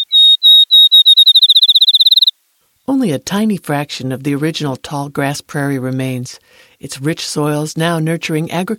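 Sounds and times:
field sparrow singing: 0.0 - 2.3
speech: 2.9 - 8.7.

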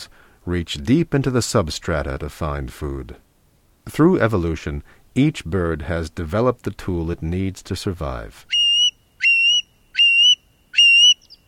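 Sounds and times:
speech: 0.4 - 3.3, 3.9 - 8.6
curlew whistled calls: 8.5 - 11.4.

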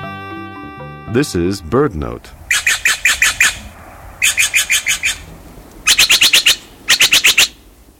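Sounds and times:
speech: 1.2 - 2.4
Steller's jay harsh calls: 2.5 - 7.6.

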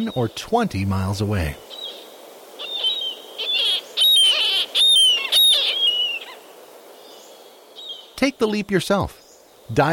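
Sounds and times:
speech: 0.0 - 1.8, 8.2 - 9.9
murrelet calling: 1.6 - 8.2.

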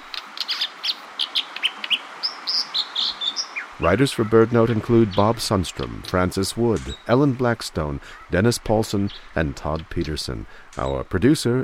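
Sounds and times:
steady hiss: 0.0 - 11.6
dipper singing: 3.4 - 11.6
speech: 3.8 - 11.6.

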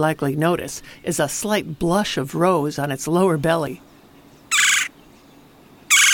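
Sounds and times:
speech: 0.0 - 3.9
red-bellied woodpecker giving buzzy rolling churr calls: 4.1 - 6.1.

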